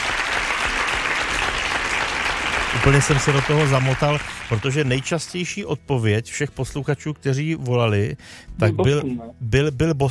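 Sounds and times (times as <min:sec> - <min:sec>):
applause sound effect of many hands clapping: 0:00.0 - 0:05.5
speech: 0:02.8 - 0:10.0.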